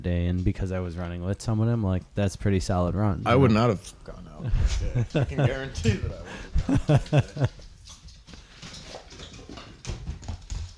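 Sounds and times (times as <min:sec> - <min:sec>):
speech: 0:00.0 - 0:07.6
laughter: 0:04.4 - 0:07.6
dogs' paws pattering and clicking across a hard floor: 0:06.8 - 0:10.7.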